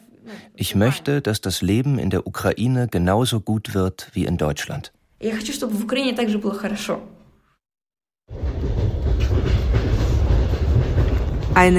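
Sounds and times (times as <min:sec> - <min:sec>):
speech: 0:00.2 - 0:07.2, 0:11.6 - 0:11.7
train carriage in Ukraine rumbling along rails travelling to Kharkiv: 0:08.3 - 0:11.7.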